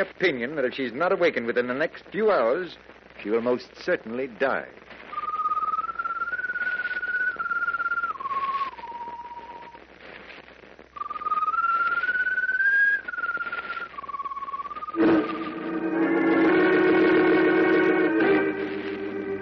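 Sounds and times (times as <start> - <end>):
speech: 0.0 - 4.9
glowing bird on a mast whistling a mournful tune: 5.1 - 9.8, 11.0 - 16.0
fuller brighter sustained tone: 15.0 - 19.4.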